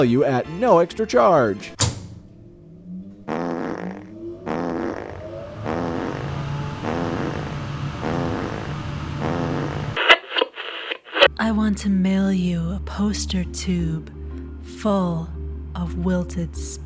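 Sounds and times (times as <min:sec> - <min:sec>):
speech: 0:00.0 - 0:01.8, 0:11.5 - 0:14.2, 0:14.8 - 0:16.8
low mechanical drone: 0:01.6 - 0:10.0
abrupt clunk: 0:01.8 - 0:02.5
machine farting blasts on a cheese wheel: 0:01.8 - 0:10.0.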